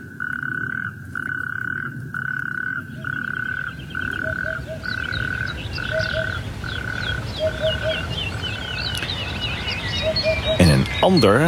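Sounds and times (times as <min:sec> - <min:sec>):
faint chirps: 0:00.0 - 0:11.4
natterjack toads calling from a rain-filled wadi: 0:00.0 - 0:11.4
speech: 0:11.0 - 0:11.4.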